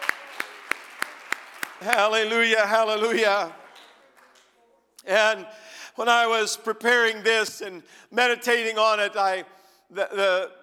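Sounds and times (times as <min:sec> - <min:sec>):
audience clapping hands in steady rhythm: 0:00.0 - 0:04.6
speech: 0:01.8 - 0:03.6, 0:05.0 - 0:10.6.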